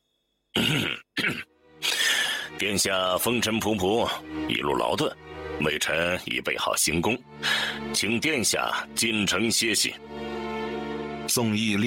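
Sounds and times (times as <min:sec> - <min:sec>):
man coughing: 0:00.5 - 0:02.1
speech: 0:00.6 - 0:01.0, 0:02.6 - 0:10.4, 0:11.4 - 0:11.8.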